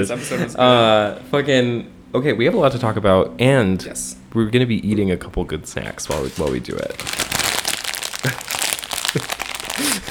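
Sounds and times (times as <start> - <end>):
speech: 0.0 - 7.4, 8.2 - 8.5
brown paper lunch bag crinkling and rustling: 6.1 - 10.0.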